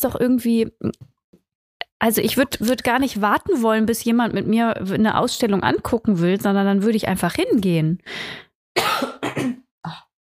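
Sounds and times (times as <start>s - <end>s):
speech: 0.0s - 1.1s, 2.0s - 10.0s
woman coughing after choking: 8.8s - 10.0s.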